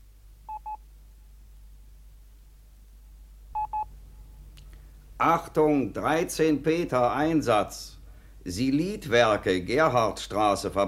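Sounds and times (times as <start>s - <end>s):
telephone number being dialed on a touch-tone phone: 0.5s - 0.8s, 3.6s - 3.9s
speech: 5.2s - 10.8s.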